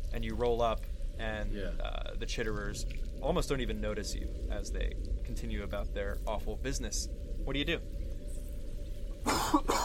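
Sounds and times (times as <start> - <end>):
speech: 0.1 - 8.0
harsh raspy coughs: 9.3 - 9.8.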